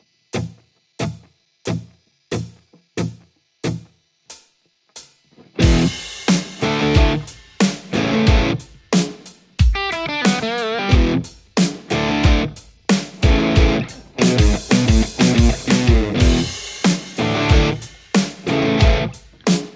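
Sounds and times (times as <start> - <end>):
electric guitar: 5.4 - 19.6.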